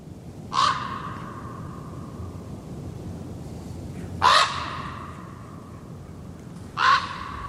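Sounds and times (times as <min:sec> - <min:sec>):
hiss: 0:00.0 - 0:07.4
wind: 0:00.0 - 0:07.4
common raven croaking: 0:00.5 - 0:02.0, 0:04.2 - 0:05.5, 0:06.8 - 0:07.4.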